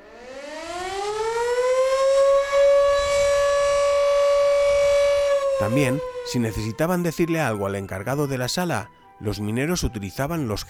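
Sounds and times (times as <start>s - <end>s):
mechanical mine emergency siren wailing: 0.0s - 7.1s
speech: 5.6s - 10.6s.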